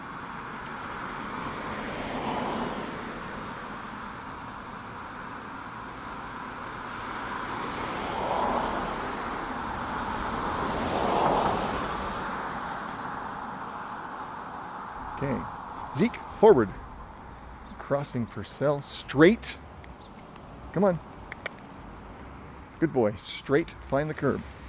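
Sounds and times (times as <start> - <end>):
traffic noise: 0.0 - 24.6
car driving past on a nearby road: 1.0 - 3.6, 6.9 - 17.9
speech: 15.2 - 15.4, 16.0 - 16.8, 17.9 - 19.6, 20.8 - 21.1, 22.8 - 24.6.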